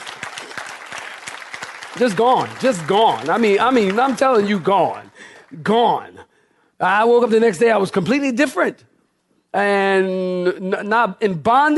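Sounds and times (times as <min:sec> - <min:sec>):
audience clapping hands: 0:00.0 - 0:06.1
speech: 0:02.0 - 0:06.2, 0:06.8 - 0:08.9, 0:09.5 - 0:11.7.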